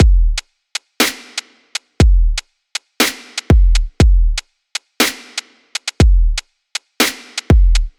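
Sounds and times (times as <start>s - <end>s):
electro dub drum kit samples: 0.0s - 0.4s, 1.0s - 2.4s, 3.0s - 4.4s, 5.0s - 6.4s, 7.0s - 7.9s.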